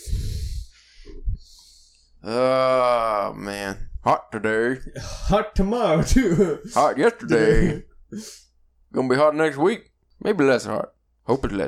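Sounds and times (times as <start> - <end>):
person breathing heavily into a microphone: 0.0 - 2.2
speech: 2.2 - 11.6.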